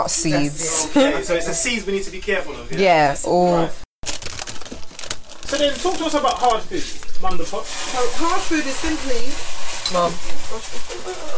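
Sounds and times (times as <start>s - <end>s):
speech: 0.0s - 3.8s, 5.6s - 11.3s
pot of salt fish boiling over on the stove, spill sputtering and sizzling: 4.0s - 11.3s.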